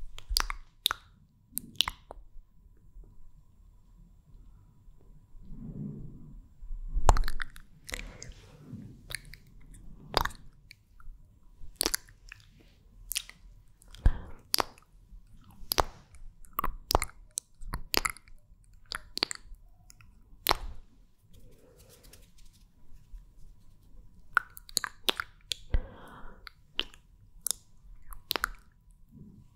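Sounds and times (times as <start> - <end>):
sharp wet lip smacks and clicks: 0.1 - 2.3, 7.0 - 8.4, 9.1 - 22.3, 24.2 - 29.0
faint breaths: 5.4 - 6.9, 7.8 - 9.1, 13.8 - 14.5, 25.7 - 26.6
soft squishy chewing-like mouth movements: 7.1 - 8.4, 9.0 - 11.0, 11.6 - 20.8, 24.3 - 25.8, 26.4 - 28.8.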